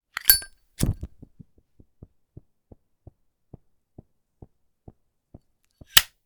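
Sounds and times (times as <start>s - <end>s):
oil lighter: 0.2s - 1.1s.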